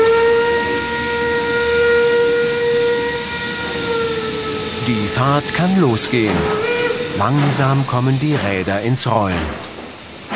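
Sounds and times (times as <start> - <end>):
steam locomotive steam whistle: 0.0 - 8.0
steam locomotive hissing: 0.0 - 10.3
speech: 5.2 - 9.7.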